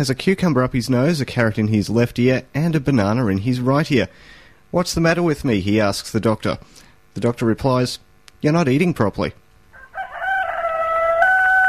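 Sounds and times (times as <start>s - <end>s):
speech: 0.0s - 9.4s
rooster crowing: 9.7s - 11.6s.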